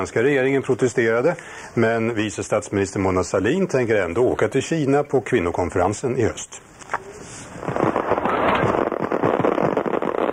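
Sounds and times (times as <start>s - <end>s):
speech: 0.0s - 6.9s
fireworks crackling and bursting: 6.8s - 10.3s.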